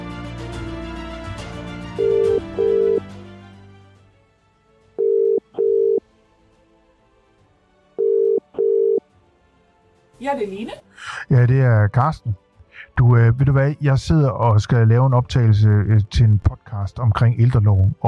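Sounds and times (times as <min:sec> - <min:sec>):
music: 0:00.0 - 0:18.0
ringback tone of an outgoing telephone call: 0:02.0 - 0:03.0, 0:05.0 - 0:06.0, 0:08.0 - 0:09.0
speech: 0:10.2 - 0:18.0.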